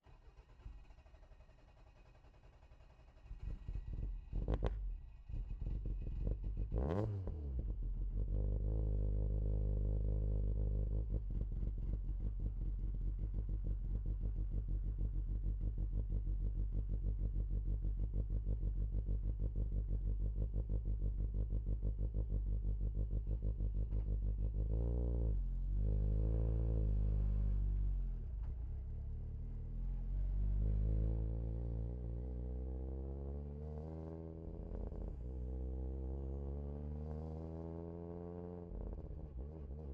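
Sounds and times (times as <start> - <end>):
1998 Toyota Corolla rally car exhaust driving fast, recorded onboard: 3.2 - 39.9.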